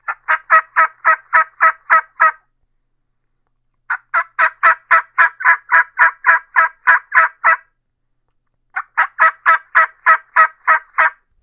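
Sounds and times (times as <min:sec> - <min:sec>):
turkey yelps on a mouth call: 0:00.1 - 0:02.4, 0:03.9 - 0:07.7, 0:08.8 - 0:11.2.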